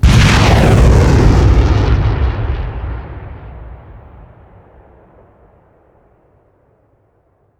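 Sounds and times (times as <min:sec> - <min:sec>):
rocket trail: 0:00.0 - 0:05.9.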